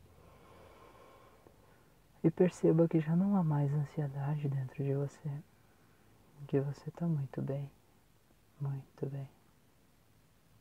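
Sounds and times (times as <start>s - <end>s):
long deep inhalation through the nose: 0.2s - 2.0s
speech: 2.2s - 5.5s, 6.4s - 7.8s, 8.6s - 9.4s.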